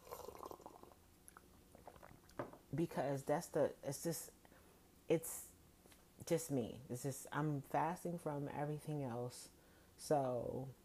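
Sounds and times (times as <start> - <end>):
person sipping coffee from a cup: 0.0 - 2.4
speech: 2.7 - 4.4, 5.1 - 5.5, 6.3 - 10.8.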